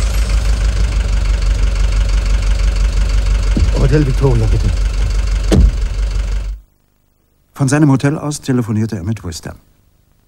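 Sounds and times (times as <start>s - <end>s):
taxi engine idling: 0.0s - 6.6s
speech: 3.9s - 4.8s, 7.6s - 9.8s.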